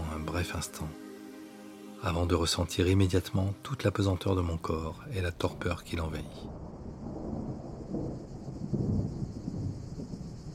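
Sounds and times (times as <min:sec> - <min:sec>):
steady rain: 0:00.0 - 0:10.5
speech: 0:00.4 - 0:01.0, 0:02.0 - 0:06.7
low rolling thunder: 0:05.2 - 0:10.5.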